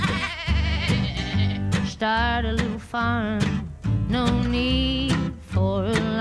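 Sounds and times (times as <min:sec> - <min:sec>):
goat bleating: 0:00.0 - 0:01.8
speech: 0:02.0 - 0:06.1.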